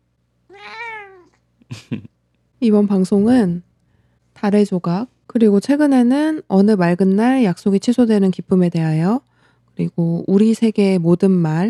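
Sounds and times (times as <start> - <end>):
cat meowing: 0.5 - 1.4
laughter: 1.7 - 2.1
speech: 1.9 - 3.7, 4.4 - 11.6.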